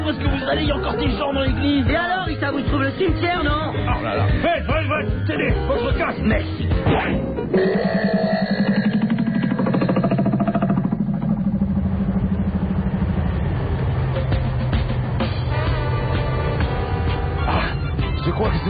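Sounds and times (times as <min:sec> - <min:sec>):
speech: 0:00.1 - 0:08.8
car engine driving fast at high revs: 0:08.2 - 0:18.6.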